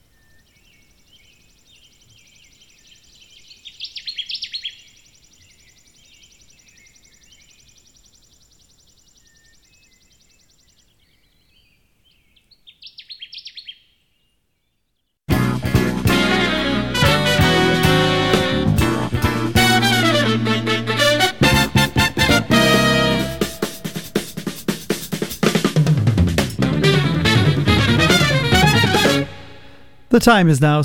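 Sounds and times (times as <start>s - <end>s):
Connecticut warbler singing: 0.0s - 14.8s
loud broadband music: 15.3s - 30.2s
steady high insect-like buzz: 22.6s - 25.7s
speech: 30.2s - 30.8s.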